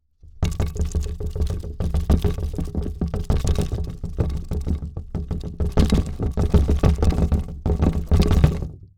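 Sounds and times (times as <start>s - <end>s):
fast wood rattle for earthquake foley: 0.2s - 8.8s.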